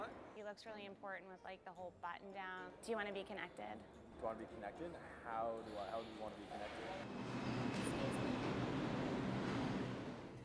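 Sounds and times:
speech: 0.0s - 7.4s
subway train rumbling along the tracks: 6.9s - 10.4s.

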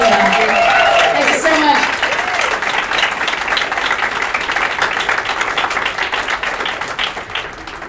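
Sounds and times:
live audience applause at a folk festival: 0.0s - 7.8s.

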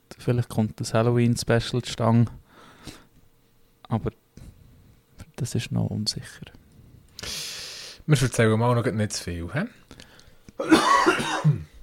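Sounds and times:
speech: 0.2s - 3.0s, 3.9s - 4.2s, 5.4s - 6.6s, 8.1s - 9.8s, 10.6s - 11.7s
person coughing after swallowing the wrong way: 10.6s - 11.8s.

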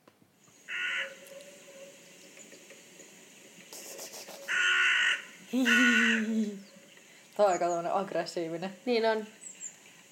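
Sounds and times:
hooded crow cawing, played recording: 0.7s - 1.2s, 4.5s - 6.3s
speech: 5.5s - 6.3s, 7.4s - 9.4s
laughter: 5.5s - 6.6s.

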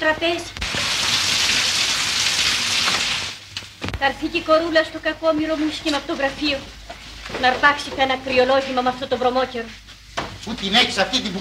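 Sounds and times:
speech: 0.0s - 0.6s, 4.0s - 6.8s, 7.4s - 9.8s, 10.4s - 11.4s
steady rain falling: 0.6s - 3.5s
raindrops pattering on a surface: 0.6s - 4.0s.

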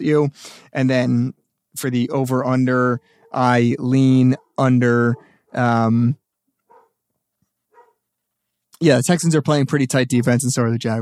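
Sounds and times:
speech: 0.0s - 6.2s, 8.8s - 10.9s
dog barking: 3.2s - 3.5s, 6.7s - 7.0s, 7.7s - 8.0s.

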